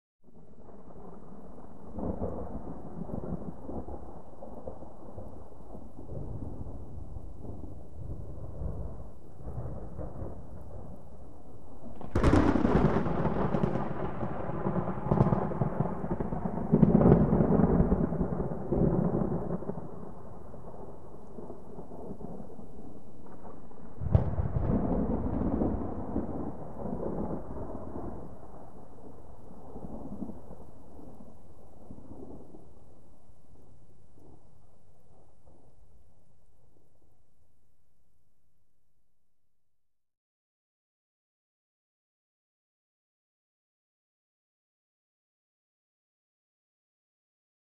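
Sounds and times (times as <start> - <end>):
medium thunder: 0.3 - 33.0, 33.6 - 36.0.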